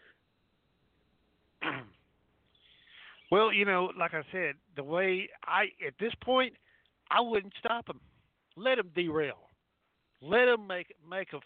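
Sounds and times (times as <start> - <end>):
sneeze: 1.6 - 2.0
speech: 3.3 - 9.5, 10.2 - 11.4.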